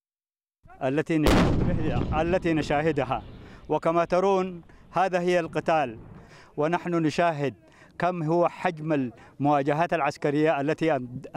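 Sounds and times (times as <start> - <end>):
speech: 0.8 - 11.3
artillery cannon fire at the front line: 1.2 - 6.5.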